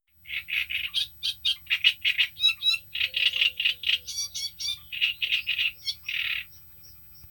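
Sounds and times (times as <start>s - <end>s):
great reed warbler singing: 0.1s - 7.2s.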